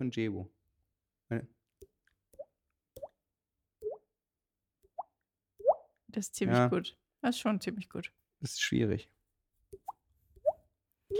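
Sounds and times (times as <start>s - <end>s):
speech: 0.0s - 0.6s, 1.3s - 1.6s, 6.1s - 9.1s
mouth imitation of water-drop plips with rising pitch: 1.8s - 3.2s, 3.8s - 4.1s, 4.8s - 6.0s, 9.7s - 11.1s.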